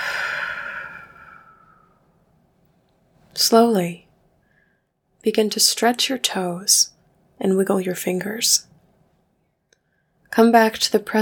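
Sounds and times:
deep breath during a guided relaxation exercise: 0.0 - 2.1, 4.4 - 4.9
speech: 3.4 - 4.0, 5.2 - 8.7, 10.3 - 11.1.

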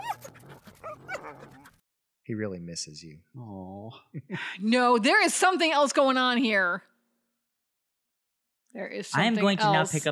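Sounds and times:
dog whimpering: 0.0 - 1.7
speech: 2.3 - 6.9, 8.7 - 10.1.

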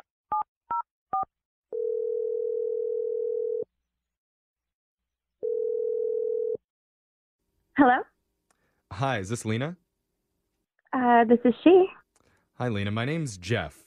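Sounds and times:
telephone ringing tones: 1.7 - 3.7, 5.4 - 6.6
speech: 7.8 - 8.1, 9.0 - 9.8, 10.9 - 12.0, 12.6 - 13.8.

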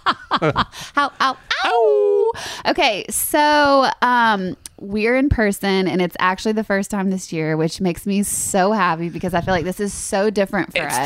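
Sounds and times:
laughter: 0.0 - 1.8
speech: 0.0 - 11.0
person imitating a wolf howl: 1.5 - 2.4.

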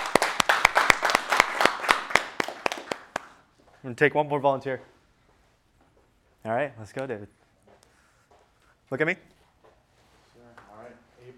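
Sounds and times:
audience clapping: 0.0 - 3.5
speech: 3.8 - 4.9, 6.4 - 7.4, 8.9 - 9.3.

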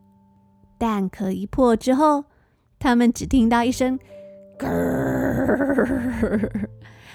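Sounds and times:
speech: 0.8 - 7.1
voice imitating baby alligator growl from a hatching egg: 4.6 - 6.6.

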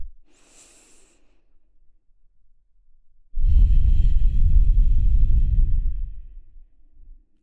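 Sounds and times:
deep breathing in and out through the nose: 0.3 - 1.4, 3.4 - 6.4.

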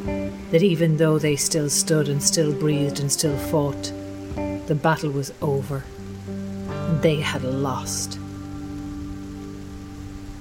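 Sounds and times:
speech: 0.0 - 6.0, 6.9 - 8.2
steady rain falling on the ground: 0.0 - 10.4.

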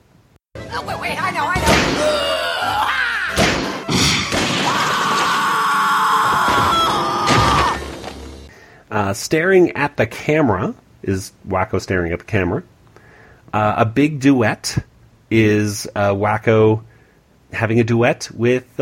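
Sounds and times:
speech: 0.7 - 2.2, 8.9 - 12.7, 13.5 - 16.9, 17.5 - 18.8
cartoon character slamming into a wall: 1.6 - 2.2, 3.3 - 5.5, 6.3 - 8.0
woman screaming while going out a window: 1.8 - 8.0.

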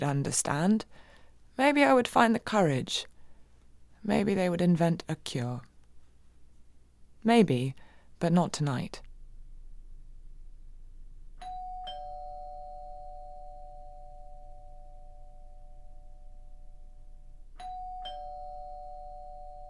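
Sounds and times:
speech: 0.0 - 1.0, 1.6 - 3.1, 4.0 - 5.7, 7.2 - 9.0
low hum: 9.0 - 11.5, 12.2 - 17.6
doorbell two-note ding-dong chime: 11.4 - 19.6.

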